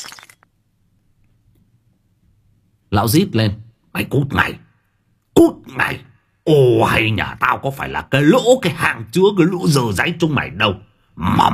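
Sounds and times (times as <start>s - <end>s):
thrown tea cup smashing: 0.0s - 0.5s
speech: 2.9s - 4.6s, 5.4s - 11.5s.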